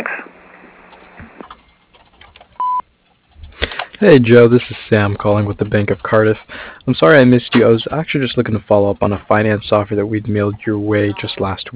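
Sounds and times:
company voicemail tone beep: 2.6 - 2.8
speech: 4.0 - 11.7.

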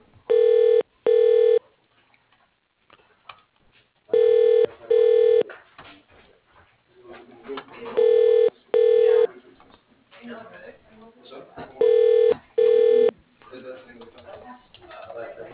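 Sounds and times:
ringing tone from a telephone extension being called: 0.3 - 1.6, 4.2 - 5.4, 8.0 - 9.3, 11.8 - 13.1.

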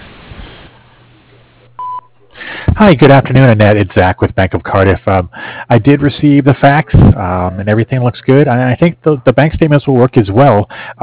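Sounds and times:
faint telephone line hiss: 0.0 - 1.0
answering machine beep: 1.8 - 2.2
speech: 2.8 - 11.0.

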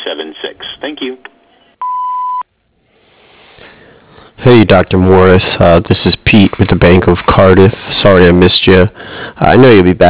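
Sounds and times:
speech: 0.1 - 1.3, 4.4 - 10.0
answering machine beep before leaving a message: 1.8 - 2.4.

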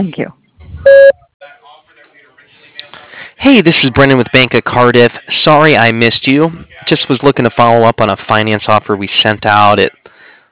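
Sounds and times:
speech: 0.0 - 1.2, 3.4 - 10.0
voicemail answering machine beep: 0.8 - 1.2.

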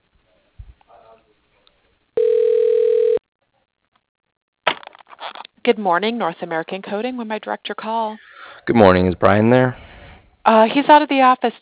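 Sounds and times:
telephone tone while call is transferred: 2.2 - 3.2
speech: 5.6 - 9.8, 10.4 - 11.6.

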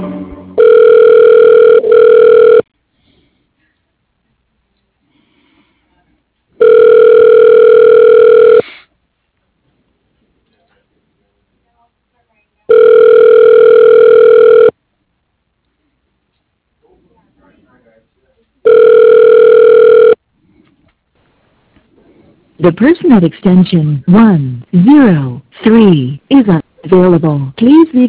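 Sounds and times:
telephone ringback tones while a call is transferred to voicemail: 0.6 - 2.7, 6.6 - 8.6, 12.7 - 14.7, 18.7 - 20.2
speech: 22.7 - 28.0.

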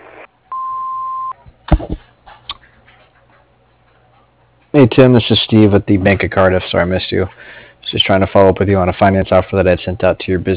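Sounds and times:
building contractor's answering machine beep: 0.0 - 1.4
speech: 4.8 - 10.5.

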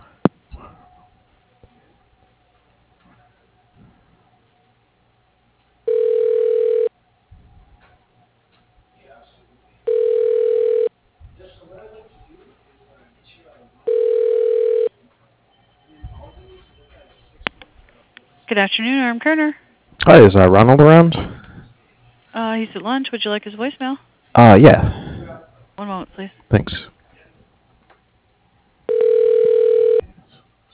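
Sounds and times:
faint noise: 0.0 - 30.7
telephone ringback tone while a call is being transferred: 5.9 - 6.9, 9.9 - 10.9, 13.9 - 14.9, 28.9 - 30.0
speech: 18.6 - 21.3, 22.6 - 25.0.

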